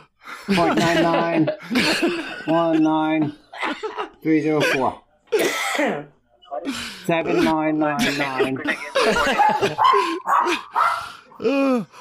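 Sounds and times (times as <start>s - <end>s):
laughter: 0.5s - 5.0s, 7.4s - 10.7s
speech: 0.5s - 12.0s
dog barking and yelping: 9.1s - 11.3s.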